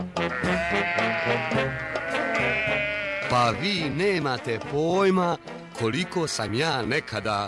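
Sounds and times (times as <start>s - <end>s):
sheep bleating: 0.2s - 4.0s, 6.0s - 7.4s
speech: 3.4s - 7.4s.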